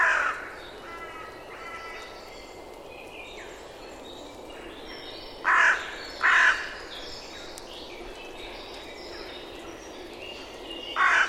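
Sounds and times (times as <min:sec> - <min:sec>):
bird cawing: 0:00.0 - 0:02.2, 0:05.4 - 0:06.8, 0:11.0 - 0:11.2.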